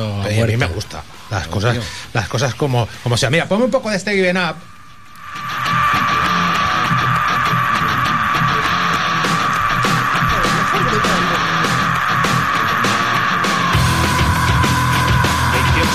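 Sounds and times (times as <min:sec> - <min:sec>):
speech: 0:00.0 - 0:04.8
distorted guitars in loud rock music: 0:04.0 - 0:15.9
long sustained scream in a rock song: 0:04.4 - 0:15.9
drums pounding in loud rock music: 0:05.2 - 0:15.9.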